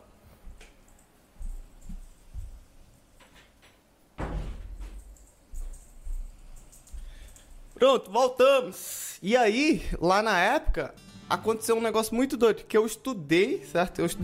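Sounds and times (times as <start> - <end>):
door pulled shut with a heavy thud: 4.2 - 5.0
speech: 7.8 - 14.2.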